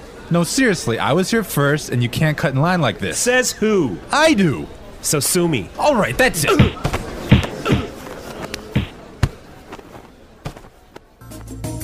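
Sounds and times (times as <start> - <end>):
speech: 0.3 - 6.9
heavy dull thumps of punches in a fistfight: 6.4 - 11.0.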